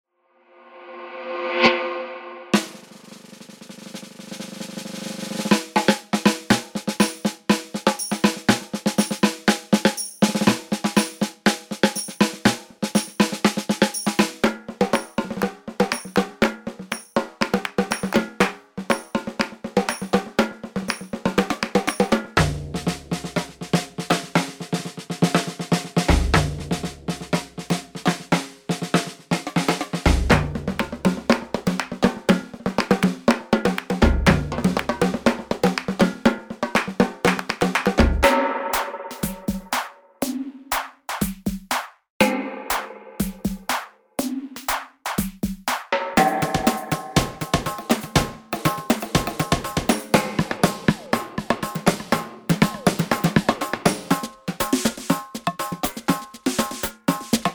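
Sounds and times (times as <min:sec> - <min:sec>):
samba snare drum: 0:02.5 - 0:57.5.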